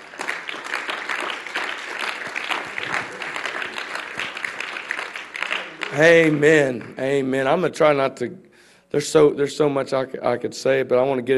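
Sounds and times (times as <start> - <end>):
roomful of people applauding: 0.0 - 7.3
speech: 5.9 - 11.3.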